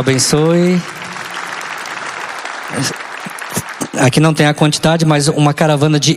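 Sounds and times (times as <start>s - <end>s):
speech: 0.0s - 1.0s, 2.7s - 3.0s, 4.0s - 6.1s
audience applauding to welcome a visiting group at a gathering led by a priest: 0.0s - 4.8s.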